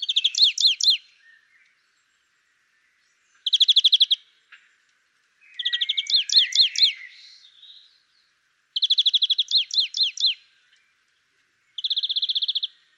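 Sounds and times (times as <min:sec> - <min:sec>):
European greenfinch Chloris chloris trilling and twittering: 0:00.0 - 0:01.2, 0:03.4 - 0:04.2, 0:05.4 - 0:07.9, 0:08.8 - 0:10.5, 0:11.7 - 0:12.8.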